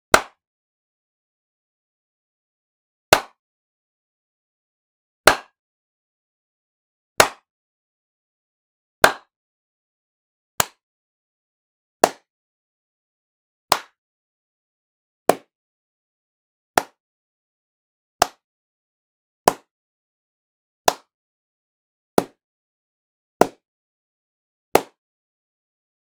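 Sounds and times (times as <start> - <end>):
human hands clapping: 0.1 - 0.4, 3.2 - 3.4, 5.3 - 5.6, 7.2 - 7.4, 9.0 - 9.3, 10.6 - 10.8, 12.0 - 12.3, 13.7 - 14.0, 18.2 - 18.4, 19.5 - 19.7, 20.9 - 21.1, 24.8 - 25.0
human slaps: 0.2 - 0.4, 5.3 - 5.6, 7.2 - 7.4, 12.0 - 12.3, 13.7 - 14.0, 20.9 - 21.1, 24.8 - 25.0.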